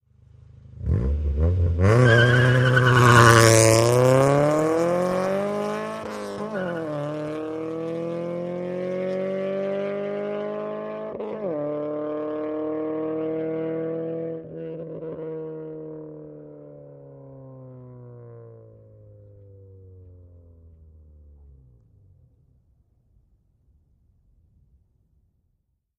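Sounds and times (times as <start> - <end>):
Acura Integra revving and peeling out past: 0.5 - 18.4.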